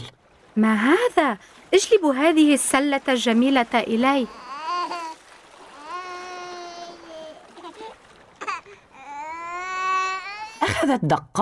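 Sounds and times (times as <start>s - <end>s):
faint trickling of water: 0.0s - 11.4s
speech: 0.6s - 4.5s, 10.9s - 11.4s
baby crying in long strained wails: 4.2s - 10.7s.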